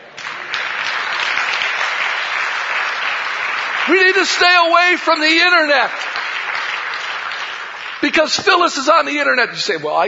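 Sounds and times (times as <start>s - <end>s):
audience applause: 0.0s - 9.7s
speech: 3.9s - 6.1s, 8.1s - 10.0s.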